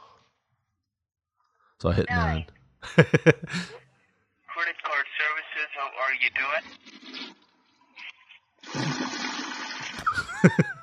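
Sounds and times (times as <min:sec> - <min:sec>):
speech: 0:01.8 - 0:03.8, 0:05.8 - 0:07.4, 0:10.1 - 0:10.8
laughter: 0:02.9 - 0:03.7, 0:09.9 - 0:10.8
toilet flushing with gurgling surge of water: 0:08.7 - 0:10.2.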